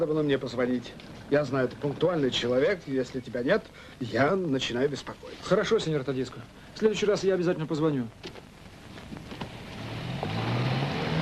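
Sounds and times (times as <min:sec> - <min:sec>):
speech: 0:00.0 - 0:08.4
faint rushing background: 0:00.0 - 0:11.2
bus engine driving off: 0:09.5 - 0:11.2.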